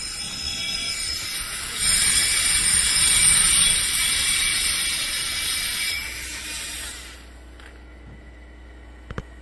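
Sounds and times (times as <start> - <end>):
gyroscope whirring hiss during a demonstration: 0.0 - 7.4.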